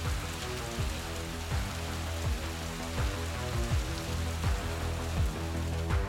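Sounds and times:
low droning tones: 0:00.0 - 0:06.0
rain pouring: 0:00.0 - 0:06.0.

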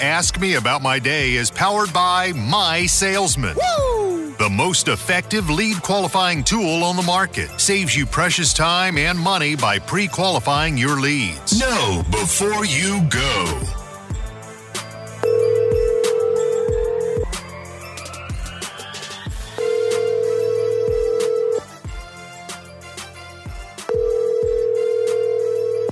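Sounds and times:
speech: 0:00.0 - 0:13.8
rhythmic music beat: 0:00.0 - 0:25.2
steady ringback tones of an unanswered call: 0:15.2 - 0:17.3, 0:19.6 - 0:21.7, 0:23.9 - 0:25.9.

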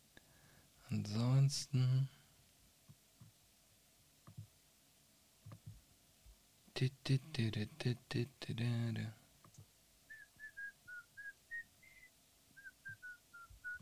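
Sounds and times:
speech: 0:00.9 - 0:02.2, 0:06.8 - 0:09.2
person whistling a short tune: 0:10.1 - 0:13.8.

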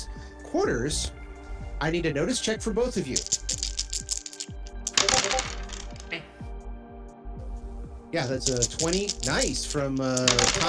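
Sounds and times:
speech: 0:00.5 - 0:01.2, 0:01.8 - 0:03.6, 0:08.1 - 0:10.6
dice rolling on a hard tabletop: 0:03.2 - 0:06.1, 0:08.4 - 0:10.6.

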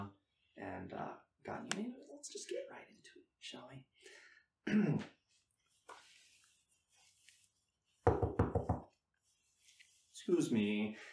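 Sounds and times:
speech: 0:00.8 - 0:05.2, 0:10.3 - 0:11.1
loud knocking on a door: 0:08.1 - 0:08.9.

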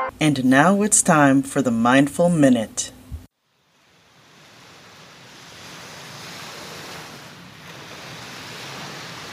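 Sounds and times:
speech: 0:00.2 - 0:03.0
ocean surf washing onto the shore: 0:03.3 - 0:09.3.

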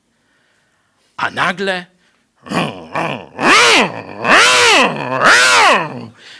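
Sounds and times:
speech: 0:01.2 - 0:03.2
man's voice mimicking chainsaws starting up at a remote camp beyond Suwałki, Poland: 0:02.4 - 0:06.2.

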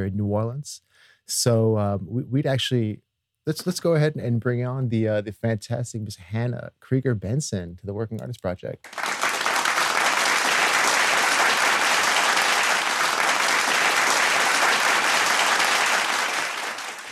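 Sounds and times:
speech: 0:00.0 - 0:09.1
canned applause sound effect played from a button: 0:08.8 - 0:17.1.

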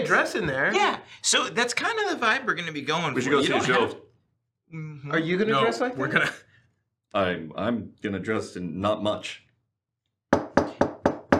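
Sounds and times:
speech: 0:00.1 - 0:04.1, 0:04.7 - 0:06.5, 0:07.1 - 0:09.4
firm knocks on a kitchen door: 0:10.3 - 0:11.3.

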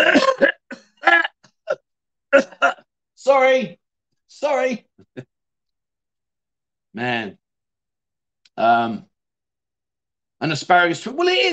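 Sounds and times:
man coughing and clearing his throat: 0:00.0 - 0:02.8
speech: 0:03.3 - 0:05.3, 0:07.0 - 0:07.4, 0:08.6 - 0:09.1, 0:10.4 - 0:11.5.

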